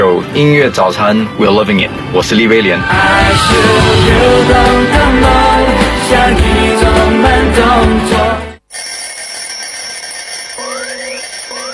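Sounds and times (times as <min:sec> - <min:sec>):
speech: 0:00.4 - 0:08.9
alarm clock ringing: 0:08.7 - 0:11.7.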